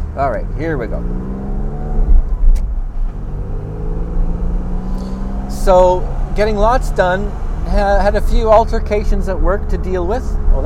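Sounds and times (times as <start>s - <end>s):
car engine revving as it accelerates past: 0.0s - 8.0s
steady road traffic noise: 0.0s - 10.6s
speech: 0.2s - 1.5s, 5.6s - 10.6s.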